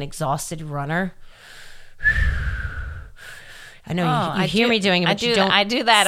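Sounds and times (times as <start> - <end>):
speech: 0.0 - 2.4, 3.8 - 6.0
exhale through pursed lips in a pursed lip breathing demonstration: 1.2 - 3.9.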